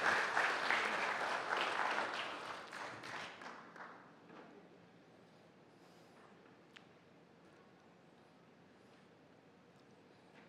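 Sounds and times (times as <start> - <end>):
room full of people applauding: 0.0 - 3.9.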